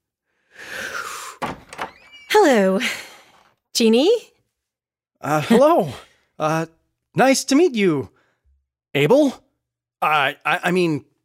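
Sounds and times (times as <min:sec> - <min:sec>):
door knocks and thuds: 0:01.4 - 0:02.2
speech: 0:02.4 - 0:03.0, 0:03.8 - 0:04.3, 0:05.2 - 0:08.2, 0:09.0 - 0:09.4, 0:10.0 - 0:11.1.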